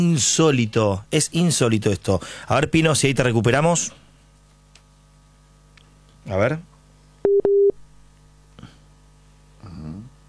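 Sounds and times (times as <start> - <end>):
speech: 0.0 - 4.0, 6.3 - 6.7
short loud electronic phone tones beeping after dropped call: 7.2 - 7.8.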